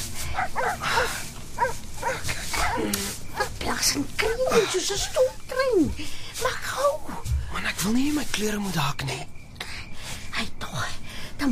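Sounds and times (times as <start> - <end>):
steady outdoor noise: 0.0 - 11.5
several dogs barking: 0.2 - 5.4
speech: 3.8 - 7.0, 7.7 - 9.4.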